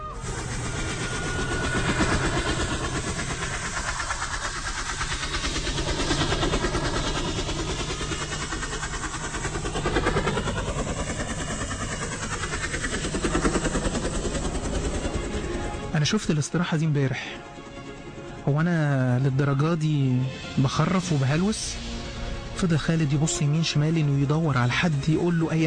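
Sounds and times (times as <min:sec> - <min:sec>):
unseen airplane engine droning over a desert: 0:00.0 - 0:25.6
speech: 0:16.0 - 0:17.5, 0:18.5 - 0:21.8, 0:22.6 - 0:25.6.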